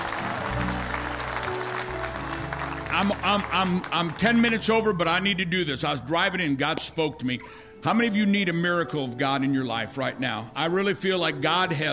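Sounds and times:
audience applause as a clap offering: 0.0s - 4.6s
sustained low organ-like music: 0.0s - 11.9s
speech: 3.0s - 11.9s.

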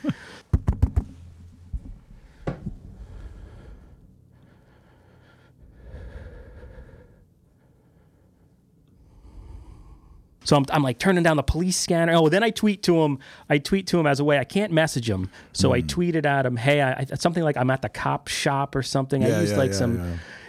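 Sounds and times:
sharp knocks or taps: 0.5s - 1.2s
heavy nervous breathing: 2.2s - 10.4s, 20.0s - 20.4s
speech: 10.5s - 20.4s.

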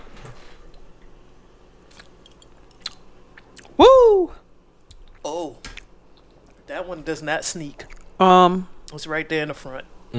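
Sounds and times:
person sipping an amber ale: 1.9s - 3.8s
speech: 6.9s - 10.1s.

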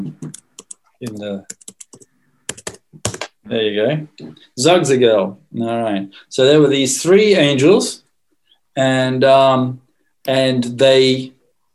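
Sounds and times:
typing on a computer keyboard: 0.2s - 3.3s
speech: 1.0s - 1.6s, 3.5s - 8.0s, 8.8s - 11.4s.

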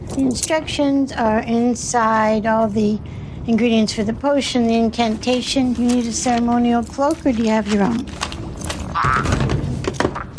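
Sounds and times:
speech: 0.2s - 8.3s, 9.0s - 9.4s
frog croak, a buzzy ribbed call: 9.0s - 9.4s.

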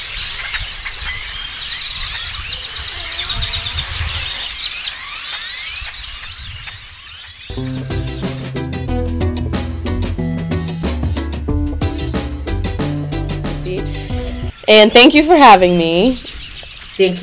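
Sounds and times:
dense chorus of birds chirping and singing: 0.0s - 8.8s, 11.3s - 17.2s
loud music: 7.5s - 14.6s
speech: 14.7s - 16.3s, 17.0s - 17.2s.

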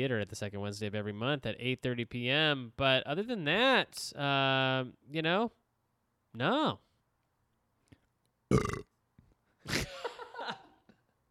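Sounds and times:
speech: 0.0s - 5.6s, 6.3s - 6.9s, 8.5s - 8.9s
longer drawn-out rumbling belch: 8.5s - 8.9s
short loud burp: 8.5s - 8.9s.

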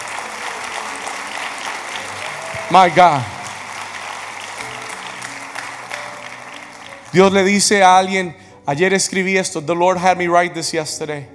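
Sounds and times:
audience applauding: 0.0s - 8.1s
speech: 2.7s - 3.3s, 7.1s - 11.3s.

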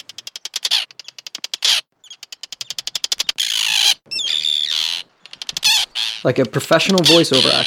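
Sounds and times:
small birds cawing and chattering while dive-bombing the recordist: 0.0s - 7.6s
speech: 6.2s - 7.6s.

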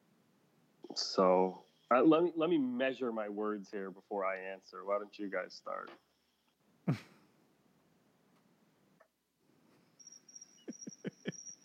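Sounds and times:
speech: 1.0s - 6.1s, 6.9s - 7.1s
crickets chirping in a steady high trill: 10.0s - 11.6s
laughter: 10.7s - 11.4s.

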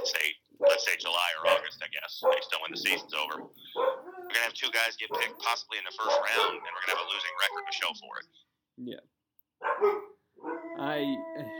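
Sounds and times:
dog barking: 0.0s - 7.6s, 9.6s - 10.9s
dog howling: 1.4s - 4.4s, 6.0s - 8.0s, 9.7s - 11.5s
speech: 1.7s - 9.1s, 9.8s - 10.0s, 10.8s - 11.5s.

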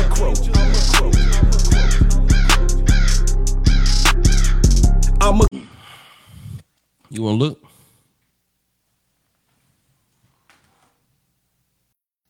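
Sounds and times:
person imitating a crow with harsh raspy caws: 0.5s - 5.8s
speech: 7.2s - 7.6s.

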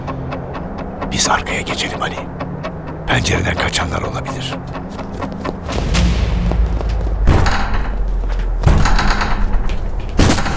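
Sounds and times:
speech: 1.2s - 2.4s, 3.1s - 5.0s
dense low rumble: 5.5s - 10.5s
battering ram striking a door: 5.7s - 10.5s.

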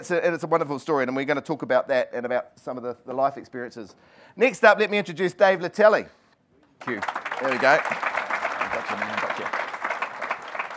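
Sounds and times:
speech: 0.0s - 6.2s, 6.8s - 8.1s
audience applause: 6.8s - 10.7s.

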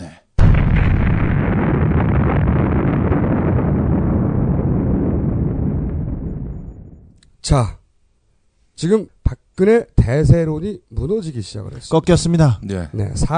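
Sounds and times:
bomb-drop explosion sound effect: 0.4s - 7.2s
speech: 7.5s - 7.8s, 8.8s - 13.3s.

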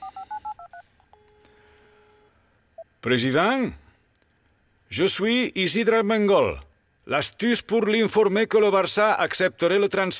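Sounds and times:
telephone keypad dialing tones: 0.0s - 1.5s
speech: 3.0s - 3.8s, 4.9s - 10.1s.

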